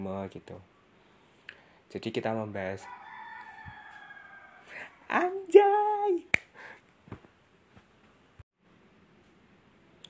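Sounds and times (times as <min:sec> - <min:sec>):
speech: 0:00.0 - 0:00.8, 0:01.9 - 0:03.0, 0:04.8 - 0:06.4
rooster crowing: 0:02.8 - 0:05.1.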